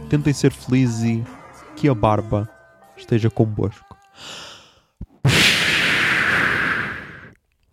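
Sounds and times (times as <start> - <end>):
speech: 0.1 - 4.4
smoke bomb going off with a hiss: 5.3 - 7.4.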